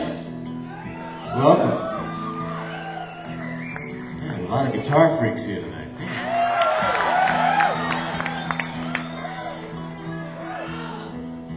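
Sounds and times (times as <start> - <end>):
large evening audience of guitar fans cheering and screaming: 0.6 - 4.1, 6.1 - 11.2
speech: 1.3 - 1.9, 4.5 - 5.7
scattered claps: 6.6 - 9.2.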